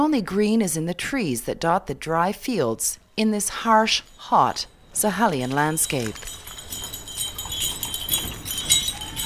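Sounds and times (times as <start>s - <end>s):
speech: 0.0s - 6.8s
bright rattling outdoor wash: 3.7s - 9.2s
donkey cart hooves clip-clopping: 3.8s - 9.2s
faint metallic clinks from the donkey cart: 3.8s - 9.2s.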